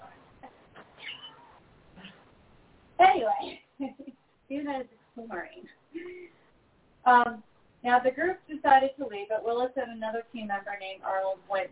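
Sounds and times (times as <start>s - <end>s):
faint hiss: 0.0s - 11.7s
cat meowing: 1.0s - 1.6s
speech: 3.2s - 6.4s, 7.1s - 11.7s.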